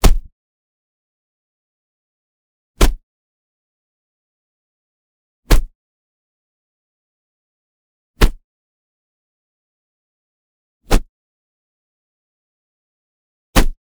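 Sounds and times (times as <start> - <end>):
leather flog hit smack: 0.0 - 0.3, 2.8 - 3.0, 5.5 - 5.7, 8.2 - 8.4, 13.6 - 13.8.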